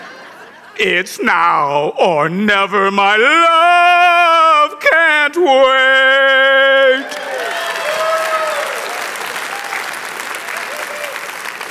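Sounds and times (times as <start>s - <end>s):
laughter: 0.0s - 1.1s
speech: 0.8s - 3.9s, 5.3s - 7.2s
crowd applause: 6.4s - 11.6s
whistles and cheers: 7.0s - 11.6s.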